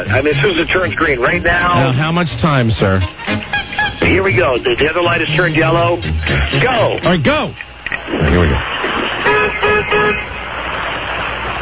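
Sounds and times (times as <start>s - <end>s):
speech: 0.0s - 8.7s, 10.1s - 10.3s
road traffic noise: 0.0s - 11.6s
car horn honks at a traffic light: 9.2s - 10.3s.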